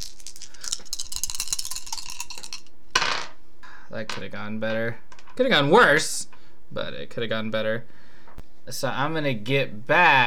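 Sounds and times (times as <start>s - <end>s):
dice rolling on a hard table: 0.0s - 3.4s, 5.1s - 5.4s
speech: 3.9s - 8.0s, 8.7s - 10.2s.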